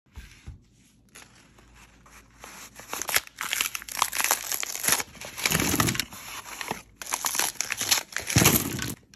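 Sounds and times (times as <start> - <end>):
filling magazine: 2.7 - 9.0.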